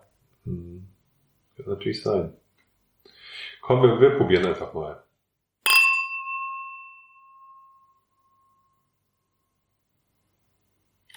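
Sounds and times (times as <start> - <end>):
speech: 0.5 - 1.0, 1.6 - 2.4, 3.6 - 5.1
wine glasses clinking: 5.7 - 7.9
wine glass ringing tone: 5.7 - 8.8.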